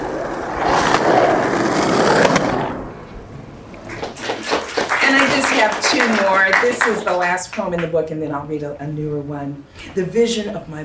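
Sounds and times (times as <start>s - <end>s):
skateboard clacks and bumps: 0.0s - 2.8s
skateboard rolling across pavement at a beach: 0.0s - 7.0s
speech: 6.0s - 10.8s.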